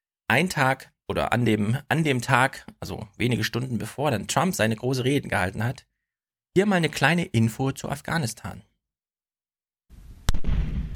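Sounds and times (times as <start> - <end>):
speech: 0.3 - 5.9, 6.6 - 8.7
landmine detonated on site during mine clearance in Afghanistan: 10.2 - 10.9.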